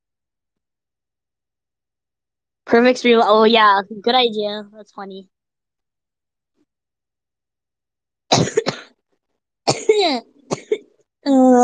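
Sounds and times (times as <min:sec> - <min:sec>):
speech: 0:02.7 - 0:05.4, 0:10.0 - 0:10.3, 0:11.2 - 0:11.6
harsh cough with choking: 0:08.3 - 0:09.0, 0:09.7 - 0:11.0.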